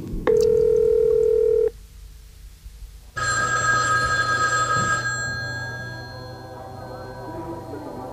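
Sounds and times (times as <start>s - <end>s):
bright electronic telephone ring: 0.3s - 1.7s, 3.2s - 7.4s
steady telephone tone: 0.3s - 1.8s, 3.2s - 8.1s.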